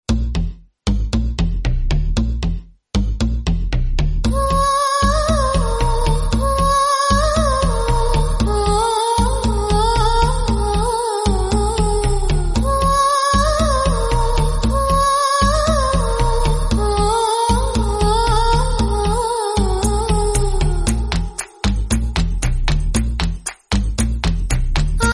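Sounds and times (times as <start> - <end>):
South Indian Tamil background music: 0.1 - 25.1
person humming: 4.3 - 22.0.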